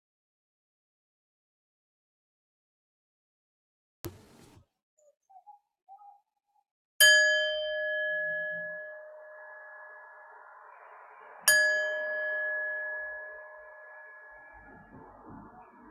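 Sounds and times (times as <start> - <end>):
knock: 4.1 - 4.6
bell ringing to end meditation: 7.0 - 10.7, 11.4 - 14.7.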